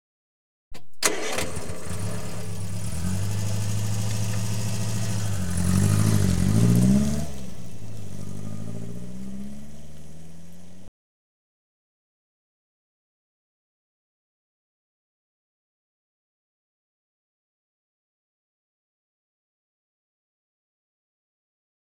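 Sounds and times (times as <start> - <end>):
Ford Fiesta 1-1 L hatchback automatic engine heard from exterior: 0.8 - 10.9.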